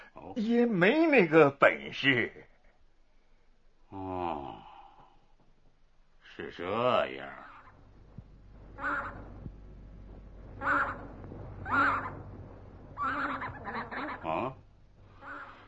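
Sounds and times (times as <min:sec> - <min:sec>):
speech: 0:00.3 - 0:02.5, 0:06.4 - 0:07.5, 0:08.8 - 0:09.2, 0:10.6 - 0:11.1, 0:11.7 - 0:12.2
wild geese calling: 0:08.7 - 0:09.4, 0:10.6 - 0:15.6.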